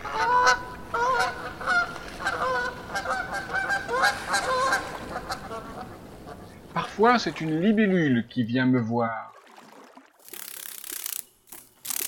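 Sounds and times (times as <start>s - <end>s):
geese honking in a chorus: 0.0s - 6.9s
speech: 7.0s - 9.3s.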